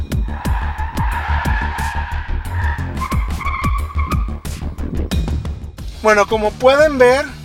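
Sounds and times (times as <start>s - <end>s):
car tires squealing as the rear axle slides out: 0.2s - 4.8s
speech: 6.0s - 7.4s.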